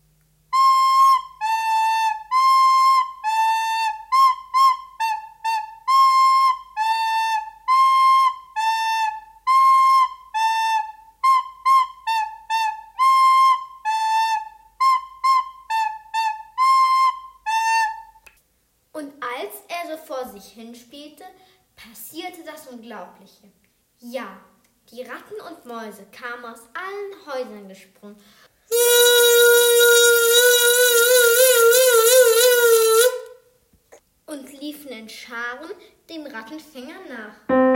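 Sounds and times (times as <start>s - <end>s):
lively melody played on a small pipe: 0.5s - 18.1s, 28.7s - 33.3s
speech: 20.4s - 28.4s, 34.7s - 37.6s.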